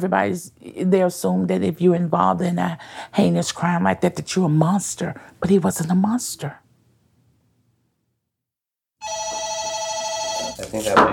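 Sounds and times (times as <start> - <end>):
speech: 0.0 - 6.6, 10.7 - 11.1
telephone ringing with a call from the front desk: 9.0 - 10.6.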